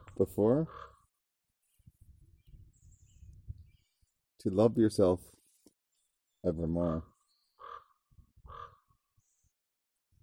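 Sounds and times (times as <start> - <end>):
speech: 0.2 - 0.9, 4.4 - 5.4, 6.4 - 7.1
crow cawing: 0.7 - 1.1, 6.8 - 9.1.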